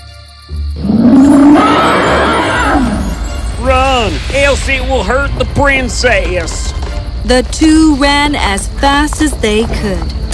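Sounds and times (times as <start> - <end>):
dragon roaring loudly: 0.8 - 3.2
speech: 4.5 - 10.2.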